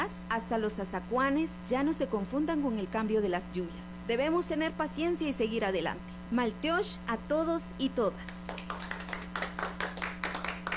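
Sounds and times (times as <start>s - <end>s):
speech: 0.0s - 8.4s
many people clapping at a community gathering: 8.2s - 10.7s.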